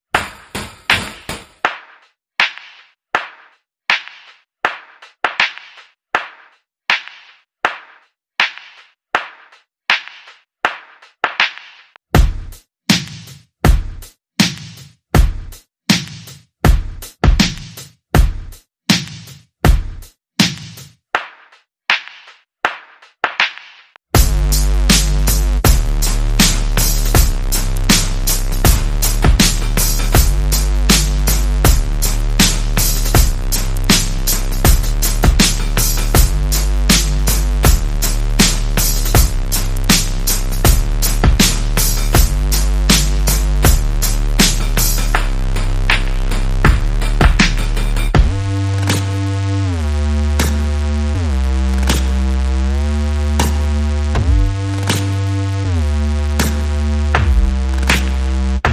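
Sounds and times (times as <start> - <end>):
percussion: 0.0 - 58.7
bass: 24.1 - 58.7.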